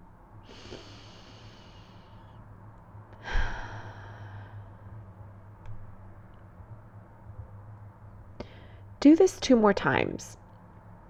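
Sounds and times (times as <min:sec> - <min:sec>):
low steady hum: 0:00.0 - 0:11.0
slow deep breaths drawn in: 0:00.5 - 0:02.3, 0:03.2 - 0:04.9
speech: 0:09.0 - 0:10.4.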